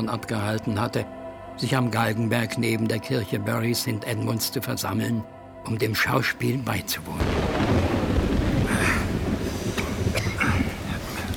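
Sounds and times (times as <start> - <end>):
speech: 0.0 - 7.9
heavy rain pouring down: 6.8 - 11.3
gusty wind roaring and rumbling: 7.2 - 11.3.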